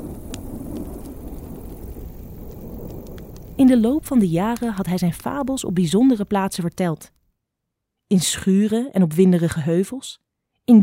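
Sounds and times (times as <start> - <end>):
hiss of falling rain: 0.0 - 6.8
thunder rumbling from an approaching storm: 0.0 - 6.8
sharp drips and crackles: 0.0 - 7.2
speech: 3.6 - 7.2, 8.1 - 10.8.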